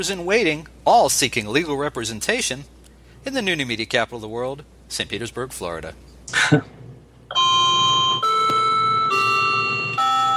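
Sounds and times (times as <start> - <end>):
speech: 0.0 - 7.4
clock ringing bell-like tones: 7.3 - 10.3.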